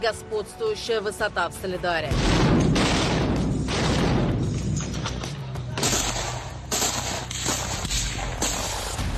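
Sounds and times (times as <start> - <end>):
speech: 0.0 - 3.0
munitions and fireworks exploding at a struck ammunition depot at night: 2.1 - 4.8, 5.8 - 9.1.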